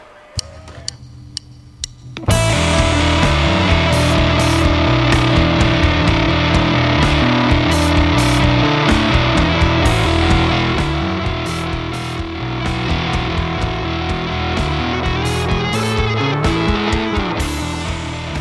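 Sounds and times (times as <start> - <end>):
dark rock music with heavy distorted guitar riffs: 0.0 - 18.3
sparse clicking ticks: 0.4 - 2.3.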